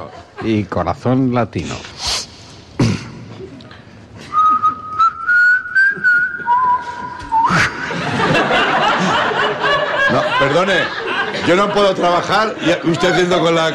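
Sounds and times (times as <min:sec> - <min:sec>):
laughter: 0:00.0 - 0:00.7, 0:07.4 - 0:13.7
speech: 0:00.0 - 0:01.9, 0:10.4 - 0:13.7
person whistling a short melodic tune: 0:04.3 - 0:07.8.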